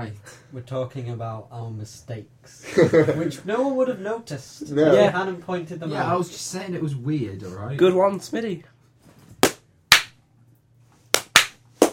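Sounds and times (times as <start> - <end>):
speech: 0.0 - 8.7
sharp loud hand claps in a rhythmic pattern: 9.4 - 10.2, 11.1 - 11.9.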